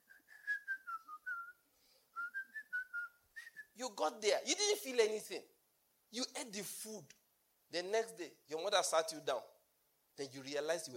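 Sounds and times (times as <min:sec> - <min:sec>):
person riding a bike whistling a lilting melody: 0:00.0 - 0:03.8
speech: 0:03.8 - 0:09.5, 0:10.2 - 0:10.9.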